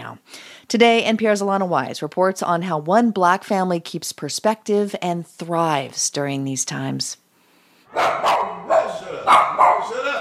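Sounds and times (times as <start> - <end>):
speech: 0.7 - 7.2, 7.9 - 10.1
small white dog barking: 7.9 - 10.0.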